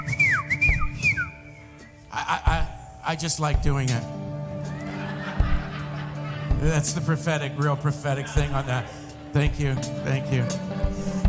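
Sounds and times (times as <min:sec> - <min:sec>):
person whistling descending notes during worship: 0:00.0 - 0:02.1
speech: 0:03.1 - 0:04.2, 0:06.6 - 0:11.2
laughter: 0:04.6 - 0:11.2.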